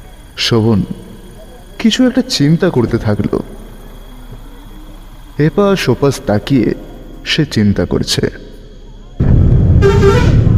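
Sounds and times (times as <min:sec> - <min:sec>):
speech: 0:00.5 - 0:01.0, 0:01.8 - 0:03.5, 0:05.4 - 0:08.4
bus horn honking: 0:09.8 - 0:10.4.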